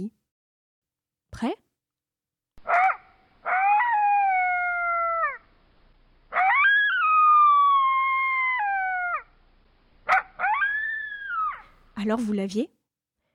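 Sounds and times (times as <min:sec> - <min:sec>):
speech: 0:01.4 - 0:01.6, 0:12.0 - 0:12.8
desert coyote howling and yipping: 0:02.6 - 0:05.6, 0:06.3 - 0:09.4, 0:10.0 - 0:11.8.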